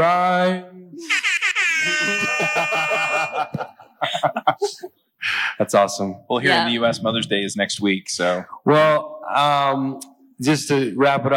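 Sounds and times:
speech: 0:00.0 - 0:01.1, 0:02.4 - 0:03.6, 0:04.5 - 0:11.3
people laughing: 0:01.0 - 0:04.9
air horn blast: 0:01.8 - 0:03.4
people chatting: 0:01.8 - 0:11.3.

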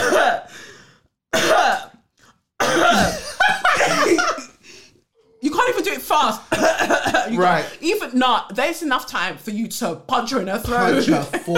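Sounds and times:
person coughing: 0:00.0 - 0:00.5, 0:01.3 - 0:02.0, 0:02.6 - 0:04.5, 0:06.5 - 0:07.8
laughter: 0:03.0 - 0:04.6, 0:10.7 - 0:11.5
speech: 0:06.1 - 0:06.7, 0:07.3 - 0:11.5.

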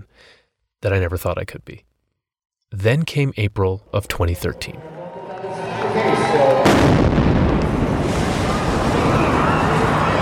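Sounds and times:
speech: 0:00.8 - 0:01.9, 0:02.7 - 0:04.9, 0:06.0 - 0:07.0
bomb explosion at a marathon: 0:06.6 - 0:10.1.

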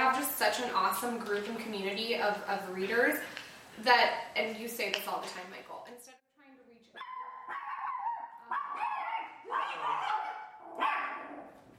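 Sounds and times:
speech: 0:00.4 - 0:06.2
two dogs barking: 0:07.0 - 0:11.6.

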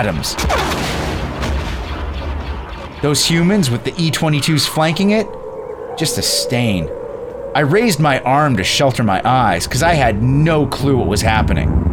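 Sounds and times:
speech: 0:00.0 - 0:00.8, 0:03.0 - 0:05.4, 0:06.0 - 0:07.0, 0:07.6 - 0:11.9
heavy fire from multiple cannons: 0:00.3 - 0:03.8
sharp blast: 0:00.3 - 0:04.2.

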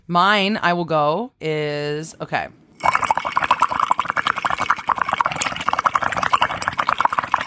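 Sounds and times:
speech: 0:00.1 - 0:03.1
air blown through a straw into water bubbling: 0:02.8 - 0:07.4.

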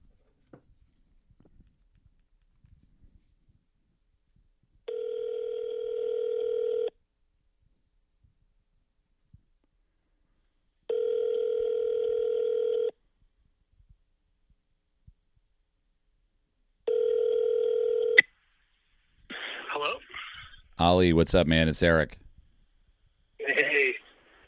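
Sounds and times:
outgoing phone call ringback tones on speakerphone: 0:04.9 - 0:07.0, 0:10.9 - 0:13.0, 0:16.9 - 0:18.3
crackly burst as the phone line picks up: 0:19.3 - 0:20.1
speech: 0:20.8 - 0:22.2.

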